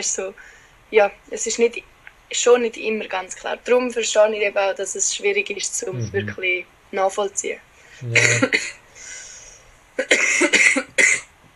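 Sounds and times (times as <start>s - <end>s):
speech: 0.0s - 8.8s, 10.0s - 11.3s
person coughing harshly: 6.0s - 6.3s, 8.0s - 8.7s, 10.0s - 11.3s
wheezy breath: 8.9s - 9.7s.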